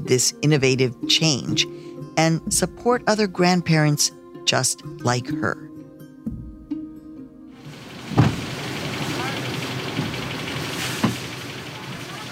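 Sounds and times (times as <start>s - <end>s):
speech: 0.1s - 6.4s
line of cars idling outdoors on a hot August day: 7.6s - 12.2s
sharp clunks of car doors or gears: 8.1s - 8.5s.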